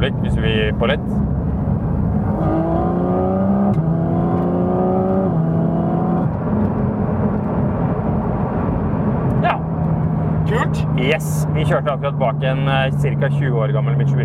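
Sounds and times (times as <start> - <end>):
speech: 0.0 - 1.4, 11.0 - 14.2
steady road rumble: 0.0 - 14.2
car engine accelerating through gear changes heard from inside the vehicle: 0.2 - 14.2.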